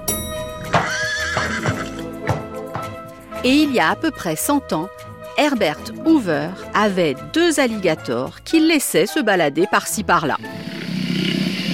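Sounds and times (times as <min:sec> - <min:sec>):
pony hooves clopping: 0:00.7 - 0:03.2
pony neighing in a long wavering whinny: 0:00.8 - 0:02.1
speech: 0:03.4 - 0:11.4.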